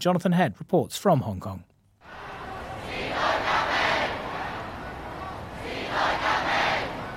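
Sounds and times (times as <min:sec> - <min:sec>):
speech: 0:00.0 - 0:01.7
large protest crowd chanting outdoors in the street: 0:02.0 - 0:07.1
rumble of street noise: 0:02.0 - 0:07.1.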